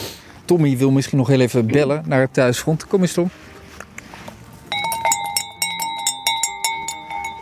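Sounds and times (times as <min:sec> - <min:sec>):
speech: 0:00.5 - 0:03.5
bell on the neck of a castrated ram clanking: 0:04.7 - 0:07.4.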